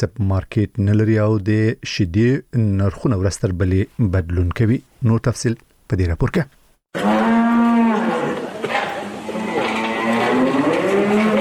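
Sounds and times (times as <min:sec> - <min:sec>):
speech: 0:00.0 - 0:07.2
cows mooing on a small dairy farm in Kandahar: 0:07.0 - 0:11.4.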